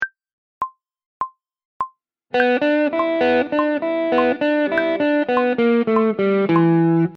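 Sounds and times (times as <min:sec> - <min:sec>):
blues guitar licks: 0:02.3 - 0:07.1.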